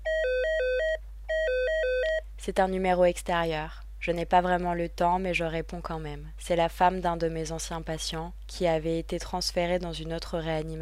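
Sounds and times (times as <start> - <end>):
ward telephone ringing in a two-tone warble: 0.0 - 2.2
low steady hum: 0.0 - 10.8
speech: 2.4 - 10.8.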